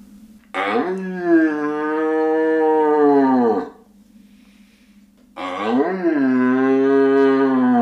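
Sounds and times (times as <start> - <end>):
person imitating a young red deer stag roar as a hunting call: 0.6 - 3.8, 5.4 - 7.8.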